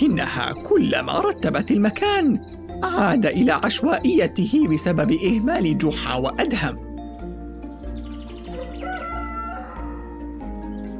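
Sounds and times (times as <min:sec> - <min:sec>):
speech: 0:00.0 - 0:06.8
rooster crowing: 0:08.4 - 0:10.4.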